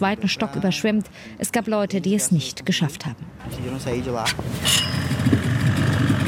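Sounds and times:
speech: 0:00.0 - 0:06.2
motorboat engine running on a river: 0:04.4 - 0:06.2.

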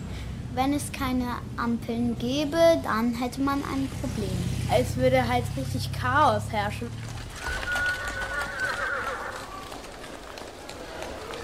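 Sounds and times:
speech: 0:00.6 - 0:07.1
rolling wheels of horse-drawn carriages: 0:06.6 - 0:11.4
clopping hooves of horse-drawn carriages on a busy street: 0:06.9 - 0:11.4
horse whinnying with a rising wavering call: 0:07.1 - 0:11.4.

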